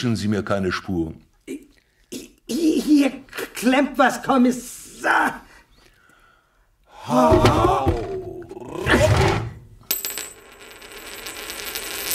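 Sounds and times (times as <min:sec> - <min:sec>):
speech: 0:00.0 - 0:01.3, 0:02.9 - 0:05.4, 0:07.1 - 0:07.9
Greek coin dropping and ringing: 0:09.9 - 0:12.1.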